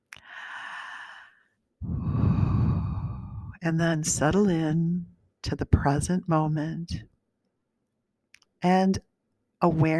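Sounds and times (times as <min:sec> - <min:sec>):
deep cleansing breath: 0:00.2 - 0:03.6
speech: 0:03.6 - 0:07.1, 0:08.6 - 0:09.9.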